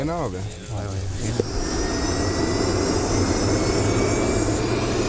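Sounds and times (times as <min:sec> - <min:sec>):
speech: 0:00.2 - 0:01.7
rescue helicopter engine and rotor: 0:01.3 - 0:05.0.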